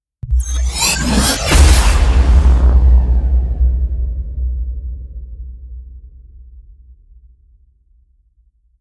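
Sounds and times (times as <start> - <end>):
abstract explosion impact: 0.4 - 6.7.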